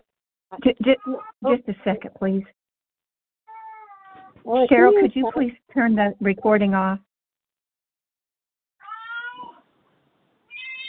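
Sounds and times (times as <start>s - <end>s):
speech: 0.5s - 2.6s, 4.4s - 7.1s
pet cat meowing during a phone call: 3.5s - 4.4s, 8.8s - 9.6s, 10.5s - 10.8s.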